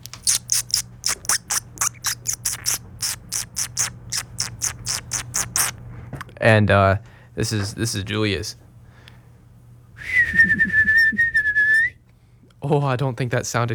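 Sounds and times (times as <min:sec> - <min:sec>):
speech: 0:06.4 - 0:08.6, 0:12.7 - 0:13.7
person whistling a bird call imitation into the mic: 0:10.0 - 0:11.9.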